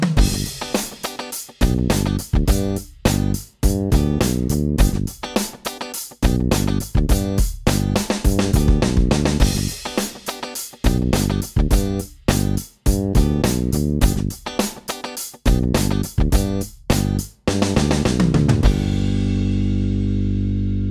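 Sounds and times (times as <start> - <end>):
bass line with three-note chords exercise: 0.2 - 0.5, 1.7 - 5.1, 6.3 - 9.7, 10.9 - 14.4, 15.5 - 20.8.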